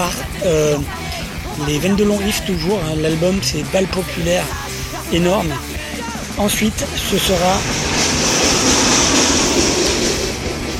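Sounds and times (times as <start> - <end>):
speech: 0.0 - 5.7, 6.4 - 7.9
heavy truck rumbling past outside with engine and road noise: 4.6 - 10.7.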